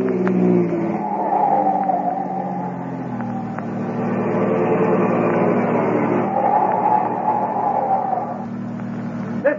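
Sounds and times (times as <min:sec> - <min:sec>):
police car engine revving while speeding: 0:00.0 - 0:09.5.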